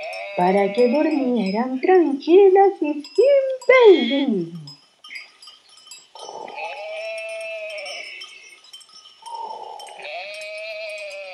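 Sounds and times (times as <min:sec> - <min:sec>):
sheep bleating: 0:00.0 - 0:01.7, 0:06.2 - 0:08.4, 0:09.3 - 0:11.3
faint clinking bell: 0:00.0 - 0:11.3
speech: 0:00.4 - 0:04.7.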